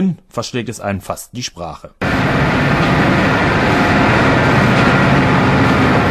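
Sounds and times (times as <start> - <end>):
speech: 0.0 - 3.5
industrial machinery roar inside a coal preparation plant: 2.0 - 6.0
mechanical clatter from conveyor belts, machines and pipes: 2.0 - 6.0.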